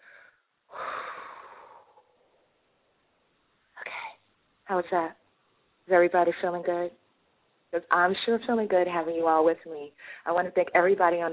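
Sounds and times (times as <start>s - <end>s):
person taking a deep breath: 0.0s - 2.4s
speech: 4.7s - 5.2s, 5.9s - 7.0s, 7.7s - 11.3s.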